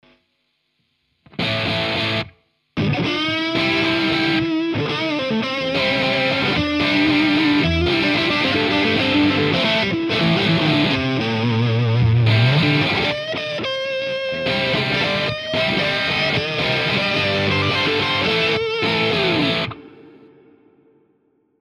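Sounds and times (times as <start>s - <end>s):
Telecaster electric guitar lead through JCM 900 amplifier: 1.3s - 20.9s.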